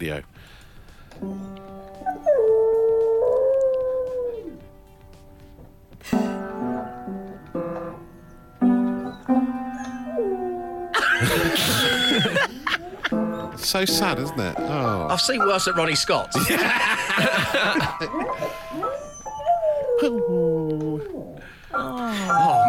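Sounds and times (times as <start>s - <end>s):
speech: 0.0s - 0.6s, 1.2s - 1.9s, 13.6s - 18.9s, 20.0s - 20.4s
discordant piano notes struck by a dog pawing the keys: 1.1s - 3.3s, 4.6s - 20.0s, 21.5s - 22.6s
dog howling: 1.2s - 4.6s, 8.9s - 11.0s, 18.3s - 21.4s, 22.3s - 22.6s
laughter: 11.0s - 13.2s, 16.4s - 18.6s.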